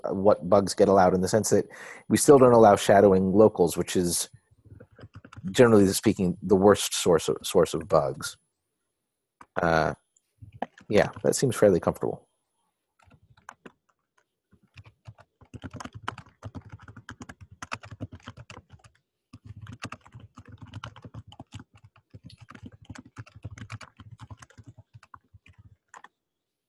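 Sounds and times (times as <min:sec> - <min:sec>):
speech: 0:00.0 - 0:04.4, 0:05.4 - 0:08.4, 0:09.6 - 0:10.0, 0:10.8 - 0:12.3
typing on a computer keyboard: 0:04.7 - 0:05.7, 0:10.5 - 0:11.4, 0:13.0 - 0:26.6.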